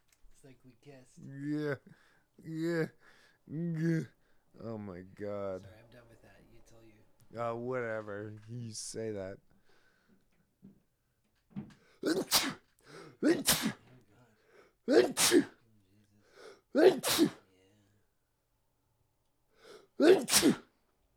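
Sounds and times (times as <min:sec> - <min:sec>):
speech: 0:00.4 - 0:06.1, 0:07.3 - 0:09.5, 0:11.6 - 0:12.6, 0:13.2 - 0:13.8, 0:14.9 - 0:15.6, 0:16.7 - 0:17.4, 0:20.0 - 0:20.6
loud sneezes: 0:12.0 - 0:13.9, 0:14.9 - 0:15.6, 0:16.5 - 0:17.4, 0:19.7 - 0:20.7
short sharp intake of breath before a sneeze: 0:12.1 - 0:13.8, 0:14.5 - 0:15.5, 0:16.3 - 0:17.4, 0:19.6 - 0:20.7.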